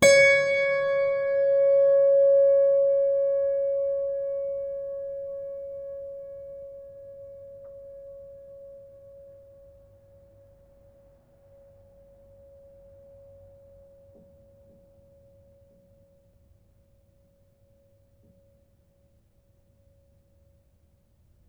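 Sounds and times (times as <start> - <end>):
piano strings plucked with sustain pedal: 0.0 - 6.0.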